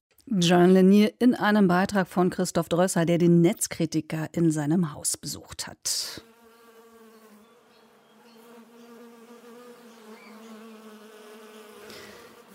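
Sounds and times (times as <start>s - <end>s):
speech: 0.3s - 6.3s
swarm of many bees buzzing: 6.3s - 12.5s.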